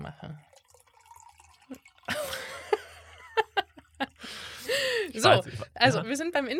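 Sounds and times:
speech: 0:00.0 - 0:00.6, 0:05.1 - 0:06.5
liquid glugging from a bottle into a glass: 0:00.2 - 0:04.7
small drips: 0:00.2 - 0:05.1
laughter: 0:02.1 - 0:05.8.

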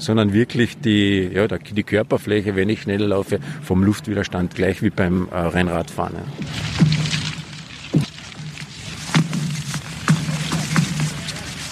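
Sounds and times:
speech: 0:00.0 - 0:07.2
lake ice booming and cracking under tension beneath someone's feet: 0:06.3 - 0:11.7.

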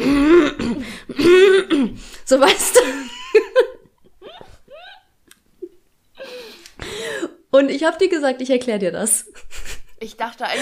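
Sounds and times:
person imitating throat clearing: 0:00.0 - 0:02.0
speech: 0:02.3 - 0:03.0, 0:07.8 - 0:10.5.

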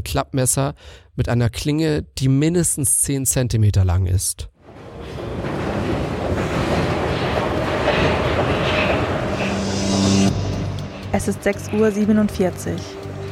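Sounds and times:
speech: 0:00.0 - 0:04.5, 0:11.2 - 0:13.0
subway train rumbling into a station and braking: 0:04.6 - 0:13.2.

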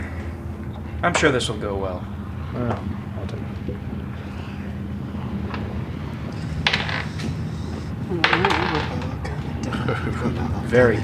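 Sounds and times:
room murmur: 0:00.0 - 0:11.0
speech: 0:01.0 - 0:04.3, 0:08.1 - 0:08.6, 0:09.9 - 0:11.0
laughter: 0:08.1 - 0:11.0
dice rattling on a table in a tabletop game: 0:08.2 - 0:08.9.

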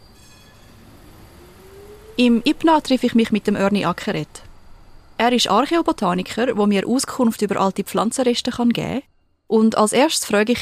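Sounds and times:
thin metallic squeal of tram wheels on rails: 0:00.0 - 0:02.9
tram rumbling past: 0:00.0 - 0:09.1
speech: 0:02.2 - 0:04.5, 0:05.2 - 0:10.5.

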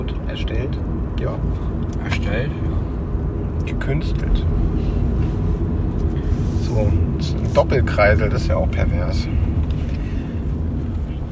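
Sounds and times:
speech: 0:00.0 - 0:02.9, 0:03.6 - 0:05.1, 0:06.7 - 0:09.5
low rumble of road noise inside a moving car: 0:00.0 - 0:11.3.

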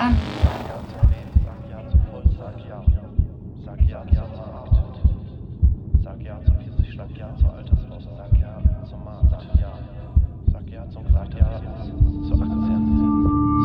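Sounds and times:
speech: 0:00.0 - 0:00.3
low tone: 0:00.0 - 0:02.4, 0:11.2 - 0:13.6
heartbeat sound effect in a homemade audio piece: 0:00.0 - 0:13.5
faint droning hum: 0:00.0 - 0:13.6.

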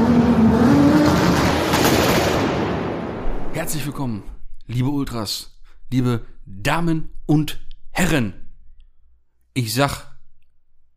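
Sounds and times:
car engine starting and revving: 0:00.0 - 0:03.2
speech: 0:03.7 - 0:08.4, 0:09.6 - 0:10.1.

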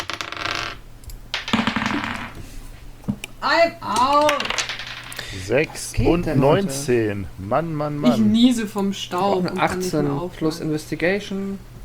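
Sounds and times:
dice rolled for a tabletop role-playing game: 0:00.0 - 0:02.4, 0:04.0 - 0:05.2
low steady hum: 0:00.7 - 0:11.8
speech: 0:03.4 - 0:04.6, 0:05.3 - 0:11.7.

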